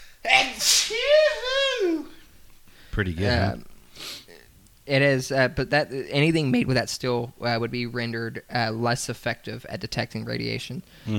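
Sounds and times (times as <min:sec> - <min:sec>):
loud sneeze with a wavering vocal tail: 0:00.3 - 0:01.8
speech: 0:03.0 - 0:03.7, 0:04.9 - 0:11.1.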